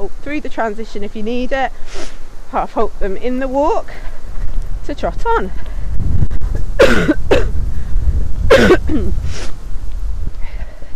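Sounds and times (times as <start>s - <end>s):
speech: 0.0s - 4.2s, 4.8s - 5.7s, 8.6s - 9.6s
wind rumble against the microphone: 0.0s - 10.9s
person coughing: 6.8s - 7.6s, 8.5s - 9.2s.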